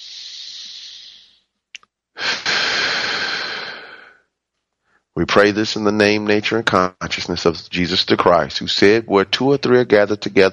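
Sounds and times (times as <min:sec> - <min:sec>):
long airy deep human breaths: 0:00.0 - 0:01.6, 0:02.2 - 0:05.2
speech: 0:05.2 - 0:10.5.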